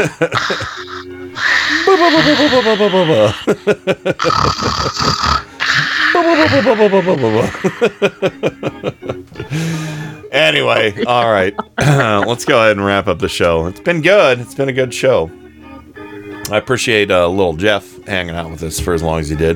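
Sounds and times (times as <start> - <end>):
person imitating loud snoring: 0.0 - 3.5, 4.2 - 7.9
speech: 0.0 - 8.9, 10.4 - 15.4, 16.5 - 19.5
laughter: 0.0 - 12.7.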